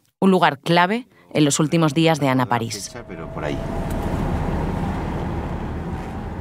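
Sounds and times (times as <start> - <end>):
speech: 0.2 - 4.0
car driving toward the railway station in La Roda: 2.6 - 6.3.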